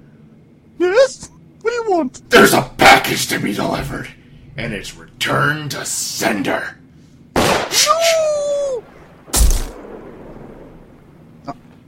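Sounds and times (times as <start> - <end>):
speech: 1.1 - 1.3, 2.0 - 6.8, 7.7 - 8.9
gunshot in a dramatic comedy scene: 7.4 - 7.9, 9.3 - 10.0.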